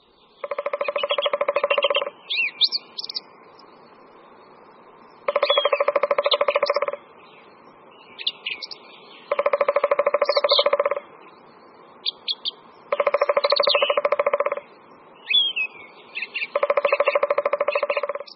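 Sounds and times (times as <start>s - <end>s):
small bird chirps: 0.0s - 18.3s
three-toed woodpecker drumming: 0.4s - 2.2s, 5.2s - 7.0s, 8.6s - 11.1s, 12.4s - 14.8s, 16.4s - 18.3s.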